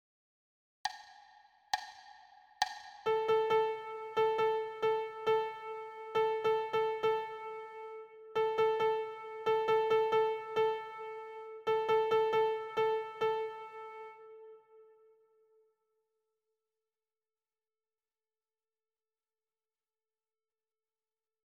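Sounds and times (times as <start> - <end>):
rhythmic dictation exercise: 0.9 - 14.1.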